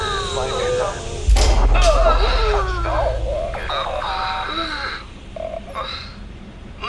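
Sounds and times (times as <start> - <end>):
deep rumble: 0.2 - 6.8
whooshing bursts: 1.2 - 4.1
capsule landing on Mars on impact airbags: 1.3 - 4.0
space capsule braking thrusters activating: 1.3 - 4.3.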